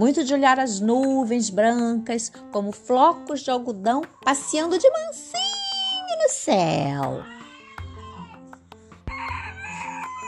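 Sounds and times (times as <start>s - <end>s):
speech: 0.0s - 5.6s, 6.2s - 7.4s
rooster crowing: 9.0s - 10.2s.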